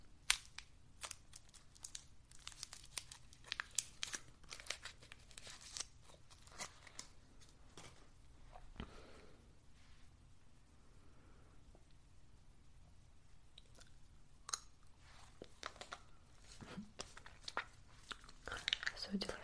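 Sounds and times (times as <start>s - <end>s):
wrapper of a sugar-free lemon mint herbal drop crinkling and tearing: 0.2s - 7.5s, 15.4s - 19.4s.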